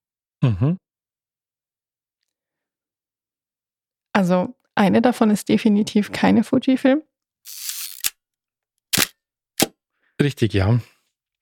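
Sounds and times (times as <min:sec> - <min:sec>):
speech: 0:00.4 - 0:00.8, 0:04.2 - 0:07.7, 0:10.2 - 0:10.9
Hasselblad 501 CM analog medium-format camera shutter firing: 0:07.5 - 0:08.1, 0:09.0 - 0:09.7
crisp mechanical clicks of Hasselblad 501 CM camera: 0:07.5 - 0:08.2, 0:08.9 - 0:09.7.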